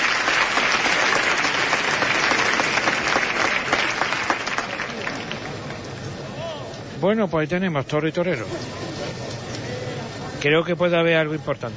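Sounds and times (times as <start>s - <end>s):
large bullring crowd applauding in a standing ovation: 0.0s - 5.9s
speech: 7.0s - 9.1s, 10.4s - 11.7s.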